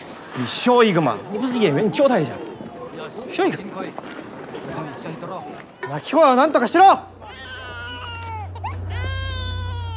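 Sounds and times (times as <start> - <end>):
speech: 0.4 - 2.5, 3.1 - 7.5
child crying: 7.2 - 9.9.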